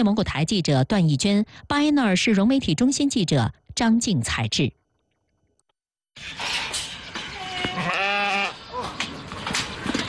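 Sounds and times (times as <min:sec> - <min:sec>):
speech: 0:00.0 - 0:04.8, 0:06.2 - 0:06.6
sheep bleating in a village farm pen: 0:07.4 - 0:08.6.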